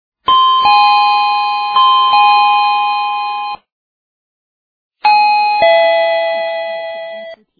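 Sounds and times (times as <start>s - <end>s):
ding-dong doorbell: 0.3s - 3.6s, 5.0s - 7.4s.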